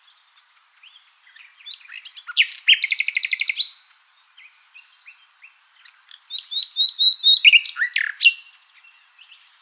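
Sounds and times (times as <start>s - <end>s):
common nightingale Luscinia megarhynchos singing varied phrases: 0.8s - 3.8s, 4.4s - 9.5s.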